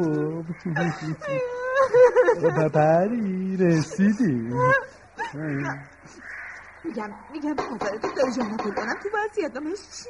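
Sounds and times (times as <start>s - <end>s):
laughter: 0.0s - 5.5s
speech: 0.0s - 10.0s
person crying and wailing: 0.6s - 2.7s, 4.2s - 5.4s.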